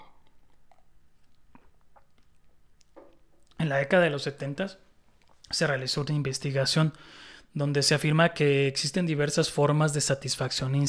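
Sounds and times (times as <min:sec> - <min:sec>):
person swallowing: 0:00.0 - 0:02.3
person sipping a drink: 0:00.0 - 0:03.0
soft wet mouth clicks: 0:00.0 - 0:03.6
speech: 0:03.6 - 0:04.8, 0:05.5 - 0:10.8.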